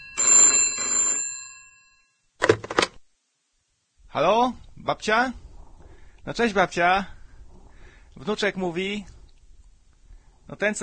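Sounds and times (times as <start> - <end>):
telephone ringing with a bright metallic bell tone: 0.0 - 2.2
speech: 4.2 - 5.4, 6.3 - 7.2, 8.2 - 9.2, 10.5 - 10.8.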